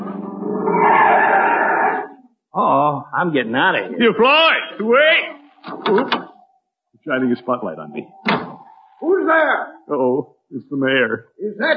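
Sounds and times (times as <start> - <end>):
car pulling up with tires skidding and screeching: 0.4 - 2.1
speech: 3.2 - 6.2, 7.1 - 8.4, 9.0 - 11.7.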